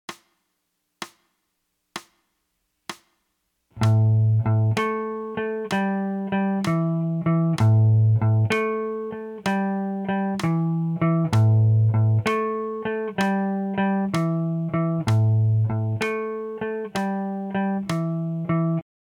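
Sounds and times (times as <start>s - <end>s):
12 bar blues music: 3.7s - 18.8s.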